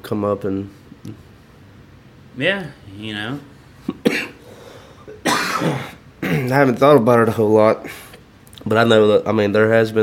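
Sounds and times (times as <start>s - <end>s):
speech: 0.0s - 1.3s, 2.4s - 4.3s, 5.6s - 10.0s
person coughing: 3.9s - 4.4s, 5.0s - 6.6s.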